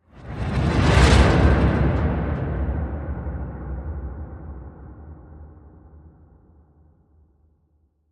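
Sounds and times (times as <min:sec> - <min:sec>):
train car whoosh: 0:00.2 - 0:03.3.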